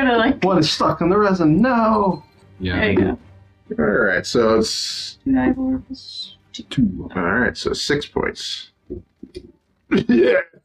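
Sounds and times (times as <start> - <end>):
speech: 0.1 - 10.6
voice imitating a character coughing and spitting: 9.9 - 10.6.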